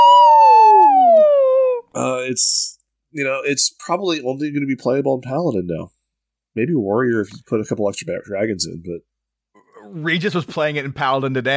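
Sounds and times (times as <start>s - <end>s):
person imitating a whale call: 0.0s - 1.9s
speech: 2.3s - 6.0s, 6.6s - 9.1s, 9.8s - 11.5s.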